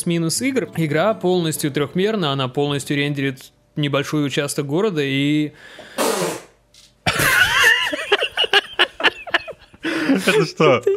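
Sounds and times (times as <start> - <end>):
speech: 0.0 - 6.0, 10.2 - 10.9
sharp breathy sneezing: 6.0 - 6.6
laughter: 7.1 - 10.9.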